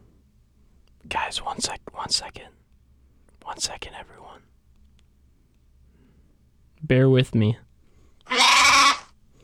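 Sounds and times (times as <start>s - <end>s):
speech: 1.0s - 2.6s, 3.4s - 4.5s, 6.8s - 7.6s
single sheep bleating: 8.3s - 9.1s.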